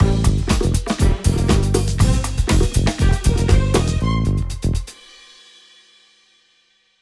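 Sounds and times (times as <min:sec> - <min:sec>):
music loop: 0:00.0 - 0:04.9.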